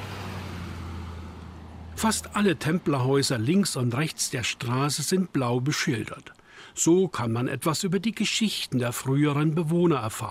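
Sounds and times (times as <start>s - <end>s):
car driving past on a quiet street: 0.0s - 2.8s
speech: 2.0s - 10.2s.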